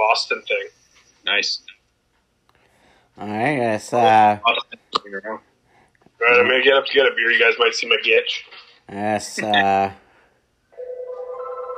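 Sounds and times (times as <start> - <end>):
speech: 0.1 - 0.7, 1.3 - 1.7, 3.2 - 5.5, 6.2 - 10.0
telephone with steady electronic ring tone: 10.7 - 11.7.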